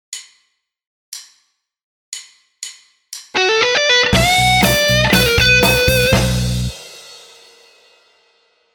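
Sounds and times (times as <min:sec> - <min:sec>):
guitar: 0:03.4 - 0:06.8.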